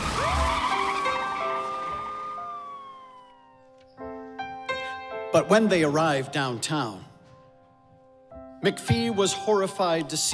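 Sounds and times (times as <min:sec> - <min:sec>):
police car engine roaring off: 0:00.0 - 0:03.5
police car tires squealing: 0:00.0 - 0:03.7
speech: 0:05.3 - 0:07.1, 0:08.6 - 0:10.3.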